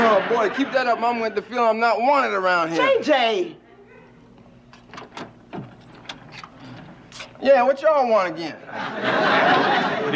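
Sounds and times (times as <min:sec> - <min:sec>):
laughter: 0:00.0 - 0:01.7, 0:08.4 - 0:10.1
speech: 0:00.3 - 0:03.6, 0:07.4 - 0:10.1
door opening with mechanical clicks and creaking latch: 0:04.7 - 0:07.4.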